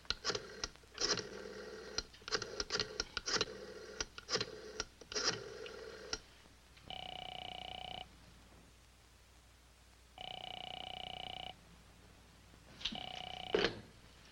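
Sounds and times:
telephone ringing unanswered: 0:00.3 - 0:06.2, 0:06.9 - 0:08.1, 0:10.2 - 0:11.6, 0:12.9 - 0:13.9.

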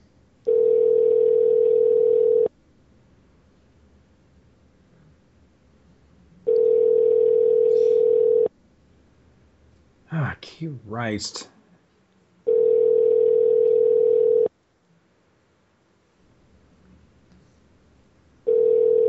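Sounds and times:
telephone ringback tone heard from the caller's end: 0:00.5 - 0:02.5, 0:06.5 - 0:08.5, 0:12.5 - 0:14.5, 0:18.5 - 0:19.0
speech: 0:10.6 - 0:11.5.

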